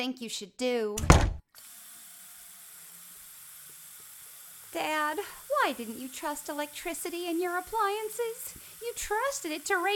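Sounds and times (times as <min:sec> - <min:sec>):
speech: 0:00.0 - 0:01.7, 0:04.7 - 0:09.9
short thump: 0:01.0 - 0:01.4
tap water running into a bathroom sink to cool a burn: 0:01.6 - 0:09.9.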